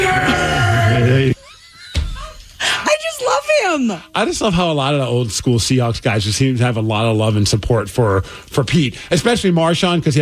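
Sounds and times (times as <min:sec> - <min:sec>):
man yelling at a press conference: 0:00.0 - 0:01.4
speech: 0:03.6 - 0:10.2.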